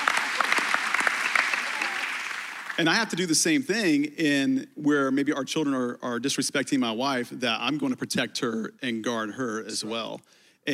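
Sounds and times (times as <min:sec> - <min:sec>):
audience applause: 0:00.0 - 0:03.0
speech: 0:02.8 - 0:10.7.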